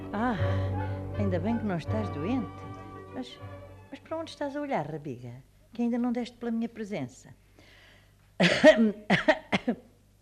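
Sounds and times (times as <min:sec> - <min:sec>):
speech: 0:00.1 - 0:07.4, 0:08.4 - 0:09.9
person coughing: 0:08.4 - 0:09.9.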